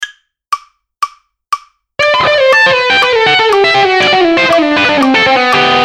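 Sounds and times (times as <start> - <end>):
guitar exercise with jumps on one string: 0.0 - 1.8, 2.5 - 5.7.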